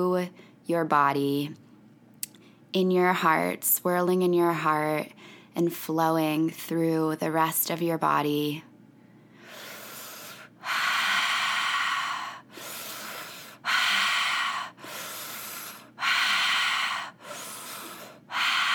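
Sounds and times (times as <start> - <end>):
speech: 0.0 - 1.6, 2.7 - 8.7
fast rhythmic breathing in a guided breathwork session: 9.3 - 18.7.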